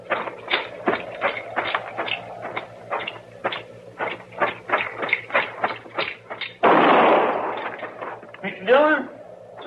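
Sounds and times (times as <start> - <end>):
steady thumps: 0.0 - 8.4
gunshot fired inside a shack: 6.6 - 7.7.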